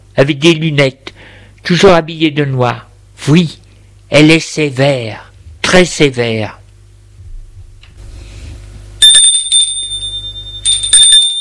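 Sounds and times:
low quiet hum: 0.0s - 11.3s
speech: 0.2s - 6.6s
doorbell ringing: 9.0s - 11.3s.

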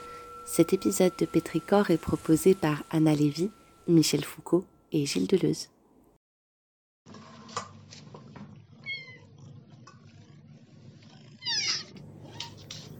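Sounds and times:
speech: 0.6s - 5.7s
domestic cats purring in a steady low rumble: 8.2s - 12.9s
domestic cat short high meows: 8.8s - 9.3s, 11.3s - 12.9s.

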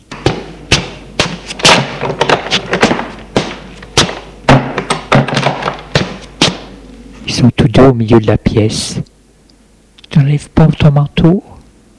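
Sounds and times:
footsteps of a man and a woman on a hard floor in a living room: 0.0s - 6.8s
speech: 7.4s - 9.1s, 10.1s - 11.5s.

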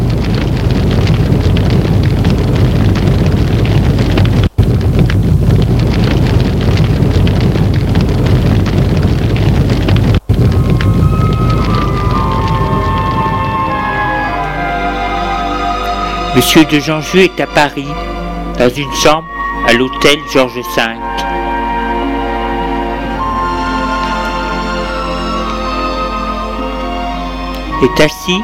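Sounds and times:
fire roaring in a fireplace: 0.0s - 28.0s
faint tonal sounds: 10.3s - 28.4s
speech: 16.4s - 21.0s, 27.8s - 28.4s.

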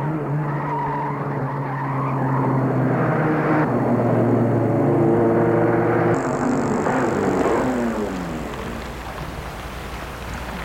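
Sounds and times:
car tires squealing while skidding and braking: 0.0s - 3.7s, 5.8s - 10.6s
car engine roaring at full speed in Paris: 0.0s - 10.6s.

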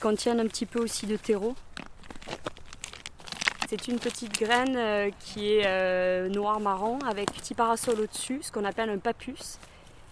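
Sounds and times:
speech: 0.0s - 1.7s, 3.7s - 9.7s
small paper seed packet crinkling while handled: 0.7s - 8.2s.

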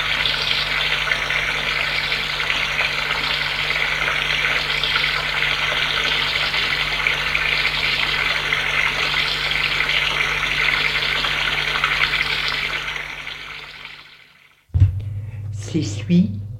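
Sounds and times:
shower running into a bathtub: 0.0s - 14.7s
speech: 15.8s - 16.4s.

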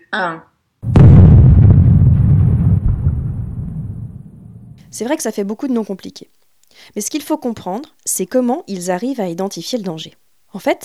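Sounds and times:
speech: 0.1s - 1.0s, 4.9s - 10.8s
explosion sound effect: 0.8s - 4.8s.

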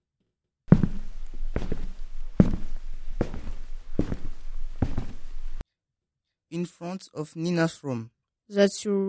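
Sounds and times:
heavy footsteps walking on a hard floor: 0.7s - 5.6s
speech: 6.5s - 9.0s.

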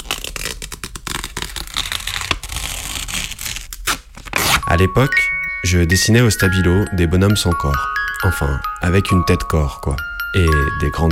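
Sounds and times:
perforated continuous-feed printer paper sheets tearing: 0.0s - 4.7s
speech: 4.7s - 11.1s.

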